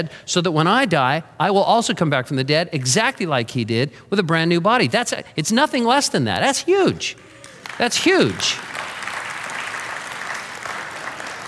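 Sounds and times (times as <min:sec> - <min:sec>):
speech: 0:00.0 - 0:08.7
audience clapping: 0:07.2 - 0:11.4.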